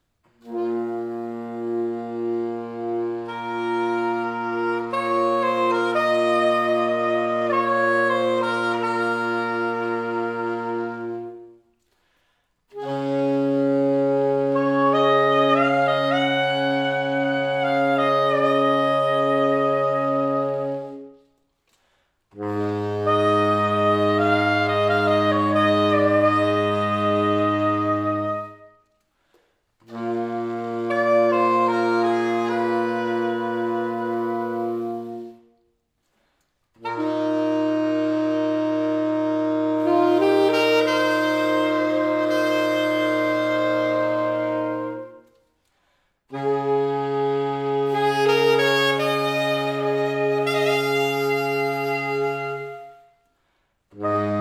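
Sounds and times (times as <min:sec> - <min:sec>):
saxophone quartet playing a Latvian folk song: 0:00.0 - 0:35.8, 0:36.7 - 0:54.4.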